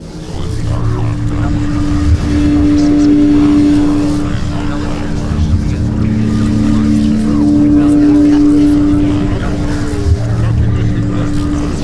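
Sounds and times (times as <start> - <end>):
ancient gate active: 0.0 - 11.8.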